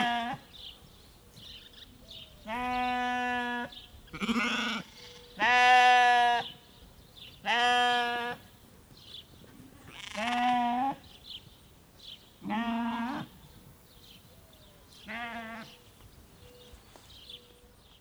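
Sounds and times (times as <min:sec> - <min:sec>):
small group of sheep bleating in a farmstead backyard: 0:00.0 - 0:00.5, 0:02.5 - 0:06.5, 0:07.4 - 0:08.5, 0:09.8 - 0:11.0, 0:12.4 - 0:13.4, 0:15.0 - 0:15.8
sparrows calling from a tree: 0:00.5 - 0:05.6, 0:06.3 - 0:10.2, 0:11.0 - 0:12.5, 0:13.2 - 0:17.9.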